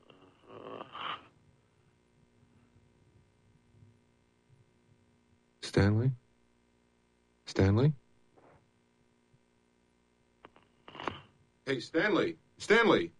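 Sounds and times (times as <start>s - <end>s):
sleeping man snoring breaths over a telephone line: 0.0s - 1.3s
steady low hum: 0.0s - 13.1s
speech: 5.7s - 6.2s, 7.6s - 8.0s, 11.7s - 13.1s.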